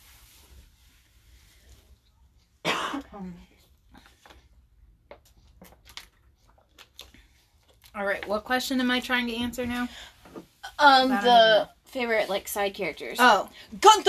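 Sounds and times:
quiet noise: 0.0s - 14.0s
throat clearing and coughing from a dry thirsty throat: 2.6s - 3.4s
speech: 3.2s - 3.6s, 8.0s - 10.2s, 10.8s - 14.0s.

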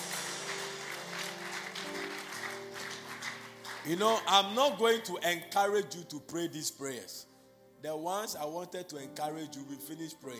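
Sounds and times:
church congregation clapping during a worship service: 0.0s - 5.1s
speech: 3.8s - 10.3s.

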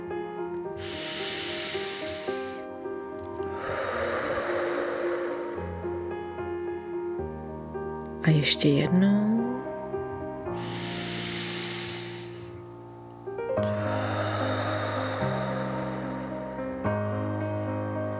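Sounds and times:
soft music: 0.0s - 18.1s
deep breathing in through nose and out through mouth in a breathing exercise: 0.8s - 6.9s, 10.5s - 12.8s, 13.6s - 17.2s
speech: 8.2s - 9.4s.

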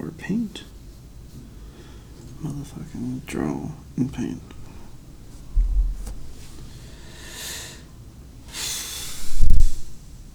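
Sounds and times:
speech: 0.2s - 0.7s, 2.4s - 4.6s
heavy breathing into a microphone: 1.3s - 2.2s, 4.6s - 10.1s
loud low blunt breath puffs blasting the microphone: 5.5s - 7.9s, 8.5s - 10.1s.

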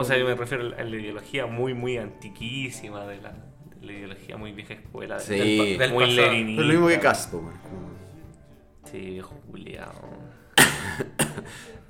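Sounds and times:
speech: 0.0s - 8.1s, 8.8s - 11.8s
sick person coughing harshly: 10.6s - 11.6s.

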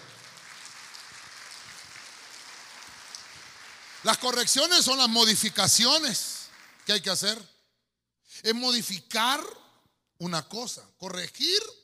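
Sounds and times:
crowd clapping: 0.0s - 7.4s
speech: 4.0s - 6.3s, 6.9s - 7.5s, 8.4s - 9.6s, 10.2s - 11.8s.

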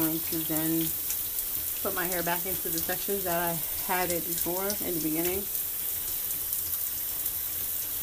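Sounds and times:
shower water pouring with faint splashing: 0.0s - 8.0s
speech: 0.1s - 1.1s, 1.8s - 5.6s.

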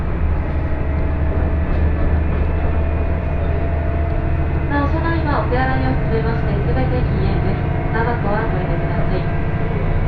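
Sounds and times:
high whine: 0.0s - 10.0s
two-car passenger train rolling along the rails heard from inside the car: 0.0s - 10.0s.

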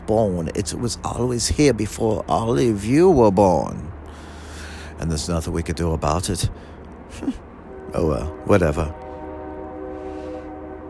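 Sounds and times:
passing train rumbling: 0.0s - 10.8s
speech: 0.1s - 4.2s, 5.0s - 9.0s
train horn blaring: 7.6s - 10.8s.

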